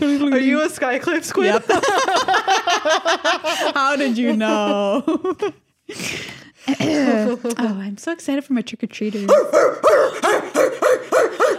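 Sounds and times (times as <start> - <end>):
speech: 0.0 - 11.4
laughter: 1.3 - 6.0
dog barking: 9.3 - 11.5.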